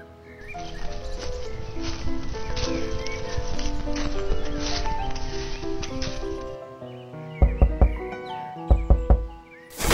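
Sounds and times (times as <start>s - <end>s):
music: 0.0s - 9.8s
hollow knocks on the trunk of a tree with holes in a forest: 7.4s - 8.0s, 8.7s - 9.3s.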